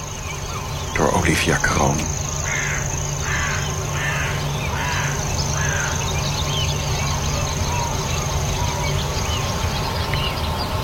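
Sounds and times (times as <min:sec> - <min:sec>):
constant outdoor hum: 0:00.0 - 0:10.8
grasshopper warbler's thin continuous high trill: 0:00.0 - 0:10.8
speech: 0:01.3 - 0:02.3
harsh crow caws: 0:02.4 - 0:06.0.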